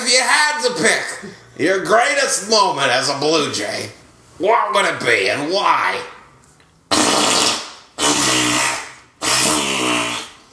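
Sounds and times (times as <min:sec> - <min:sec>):
speech: 0:00.1 - 0:06.2
wet farts: 0:06.9 - 0:10.4.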